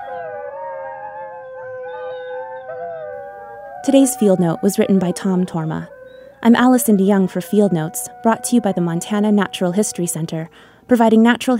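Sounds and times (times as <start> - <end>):
wolves howling in chorus in the valleys of western Montana: 0.0 - 10.5
speech: 3.8 - 11.5.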